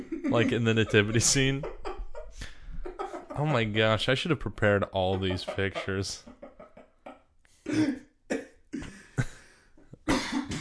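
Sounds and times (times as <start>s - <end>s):
laughter: 0.0s - 7.3s
speech: 0.3s - 2.5s, 3.4s - 6.3s, 7.7s - 8.0s
harsh coughs from more than one person: 7.7s - 9.2s, 10.1s - 10.6s.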